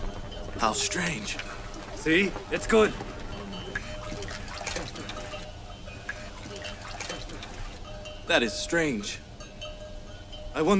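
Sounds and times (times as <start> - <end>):
small splashy water drips: 0.0 - 7.9
fresh drinking water trickling: 0.0 - 9.0
speech: 0.6 - 3.1, 8.3 - 9.2, 10.6 - 10.7.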